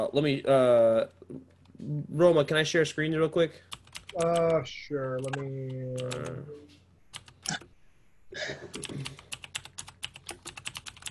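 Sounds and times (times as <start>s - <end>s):
speech: 0.0s - 6.8s, 8.4s - 9.2s
loud typing on a computer keyboard: 3.7s - 4.6s, 5.2s - 6.4s, 7.1s - 7.7s, 8.7s - 11.0s.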